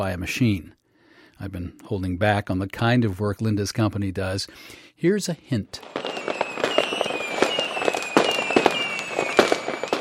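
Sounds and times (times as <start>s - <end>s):
speech: 0.0s - 0.8s, 1.4s - 6.4s
dense barrage of fireworks popping and crackling: 5.8s - 9.9s
high whistling tones sliding downward: 5.8s - 9.9s.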